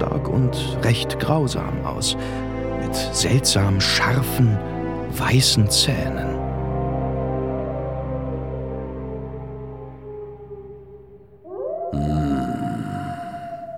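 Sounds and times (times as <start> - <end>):
speech: 0.4 - 6.3
wolves howling: 6.4 - 13.7.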